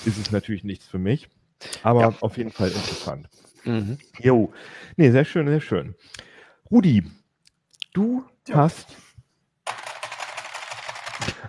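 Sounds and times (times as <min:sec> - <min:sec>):
speech: 0:00.0 - 0:07.2, 0:07.9 - 0:09.0
fast typing on a clicky mechanical keyboard: 0:09.7 - 0:11.4.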